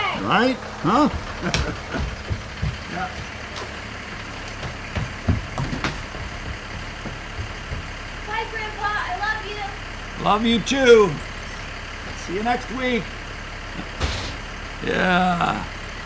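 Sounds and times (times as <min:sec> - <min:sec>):
bus engine idling outside: 0:00.0 - 0:16.0
clunks and knocks from a bus: 0:00.0 - 0:16.0
faint indistinct voices murmuring: 0:00.0 - 0:16.0
laughter: 0:00.0 - 0:16.0
speech: 0:00.2 - 0:03.3, 0:08.4 - 0:11.3, 0:12.3 - 0:13.2, 0:14.8 - 0:15.8.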